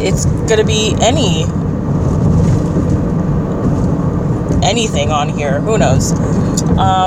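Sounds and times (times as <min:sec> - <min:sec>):
speech: 0:00.0 - 0:01.6, 0:04.6 - 0:07.0
road rumble inside a moving car: 0:00.0 - 0:07.0.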